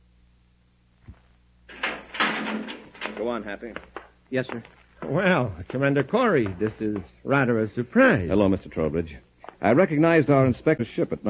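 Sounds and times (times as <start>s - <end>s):
living compartment door shutting with a soft low thud: 1.7s - 3.4s
speech: 3.2s - 11.2s.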